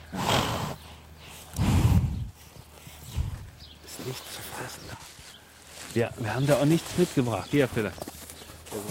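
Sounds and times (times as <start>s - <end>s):
horse snorting: 0.0s - 0.9s
speech: 6.0s - 8.1s.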